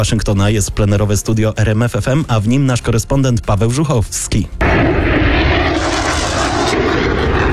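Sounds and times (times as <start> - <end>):
speech: 0.0 - 5.1
military jet aircraft flyover: 4.6 - 7.5.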